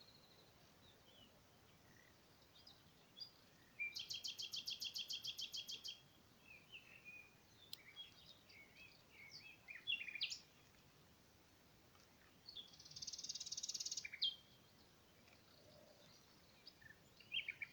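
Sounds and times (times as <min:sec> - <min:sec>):
common nightingale Luscinia megarhynchos singing: 0:00.0 - 0:11.1, 0:12.0 - 0:17.7.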